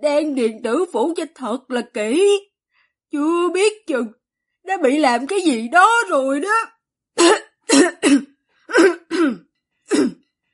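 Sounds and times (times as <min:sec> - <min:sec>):
speech: 0:00.0 - 0:02.5, 0:03.1 - 0:10.2
person coughing violently: 0:07.2 - 0:10.2.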